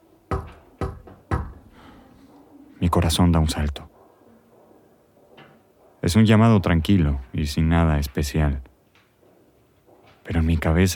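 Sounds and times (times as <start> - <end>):
soft timid knocks on a door: 0.3 - 1.7
speech: 2.9 - 3.9, 6.1 - 8.7, 10.3 - 10.9.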